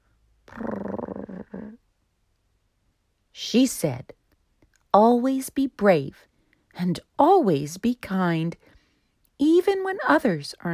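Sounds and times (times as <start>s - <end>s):
cat purring gently: 0.5s - 1.8s
speech: 3.4s - 4.2s, 4.9s - 8.7s, 9.4s - 10.7s.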